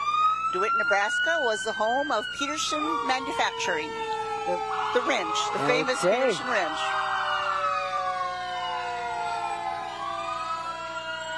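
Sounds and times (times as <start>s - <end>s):
fire engine siren wailing: 0.0s - 11.3s
speech: 0.5s - 7.0s.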